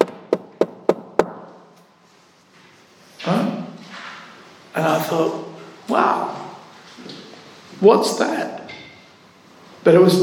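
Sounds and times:
sharp knocks on a hard surface: 0:00.0 - 0:01.5
speech: 0:04.8 - 0:06.3, 0:07.8 - 0:08.5, 0:09.8 - 0:10.2.

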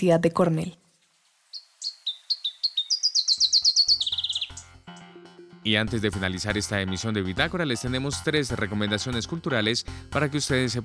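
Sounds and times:
speech: 0:00.0 - 0:00.8, 0:05.6 - 0:10.8
black-headed warbler singing: 0:01.5 - 0:04.8.

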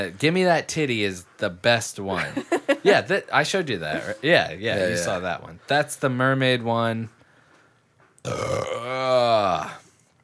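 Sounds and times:
speech: 0:00.0 - 0:07.2, 0:08.2 - 0:09.8
long loud belch caused by heartburn: 0:08.2 - 0:09.8.

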